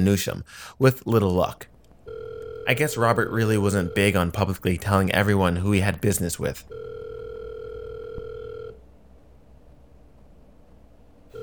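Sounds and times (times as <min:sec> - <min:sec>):
speech: 0:00.0 - 0:01.7, 0:02.7 - 0:06.9
steady electronic telephone tone of an unanswered call: 0:02.0 - 0:04.4, 0:06.7 - 0:08.8.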